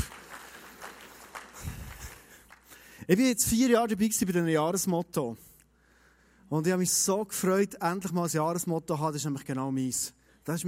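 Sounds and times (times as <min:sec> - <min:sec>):
crowd applauding: 0:00.0 - 0:03.0
speech: 0:03.1 - 0:05.5, 0:06.5 - 0:10.6.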